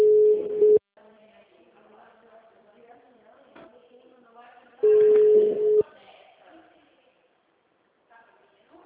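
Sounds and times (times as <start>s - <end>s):
telephone line ringback electronic tone: 0.0s - 0.8s, 4.8s - 5.8s
faint hiss: 0.0s - 8.8s.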